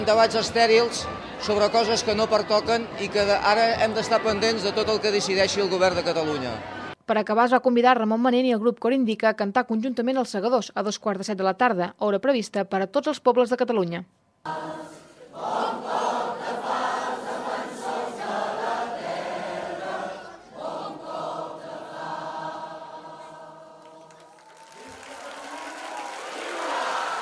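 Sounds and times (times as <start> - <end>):
speech: 0.0 - 14.8
crowd rhythmic chanting of slogans: 14.5 - 27.2
large crowd roaring and clapping at a gathering in Catalonia: 19.8 - 27.2.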